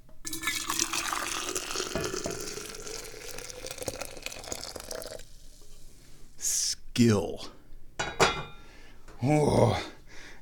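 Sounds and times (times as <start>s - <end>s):
tea poured one-handed into a cup: 0.3s - 5.8s
speech: 7.0s - 7.6s, 9.2s - 10.0s.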